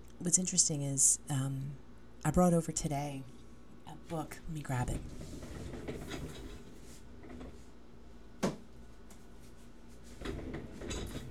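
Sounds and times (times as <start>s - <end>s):
speech: 0.2s - 5.4s
office chair rolling across the floor: 4.8s - 7.8s, 10.0s - 11.3s.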